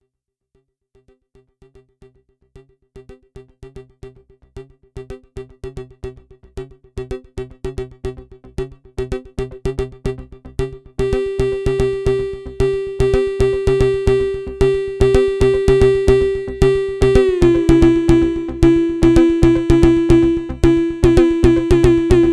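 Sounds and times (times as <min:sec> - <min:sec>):
analog synth kick drum: 0:11.0 - 0:22.3.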